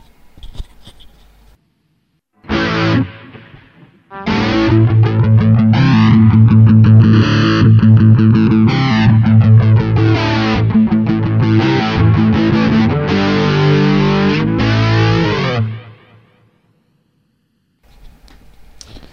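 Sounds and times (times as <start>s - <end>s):
heavily distorted electric rock rhythm guitar chugging chords with flanger effect: 2.4s - 16.3s.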